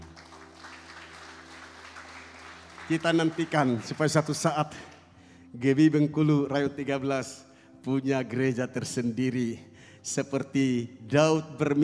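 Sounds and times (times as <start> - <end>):
congregation applauding: 0.0 - 4.5
speech: 2.9 - 4.9, 5.5 - 11.8.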